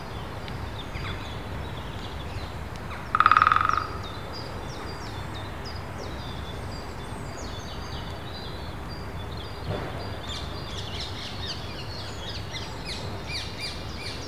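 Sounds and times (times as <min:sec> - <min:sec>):
high bird song: 0:00.0 - 0:14.2
woodpecker drumming in trees in Wandle Park, London, UK: 0:02.8 - 0:04.6.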